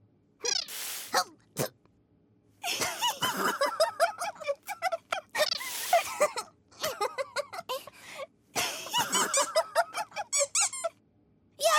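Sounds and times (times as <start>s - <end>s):
rubber bath duck squeaking: 0.4s - 0.8s
laughter: 2.7s - 7.9s, 8.7s - 10.3s.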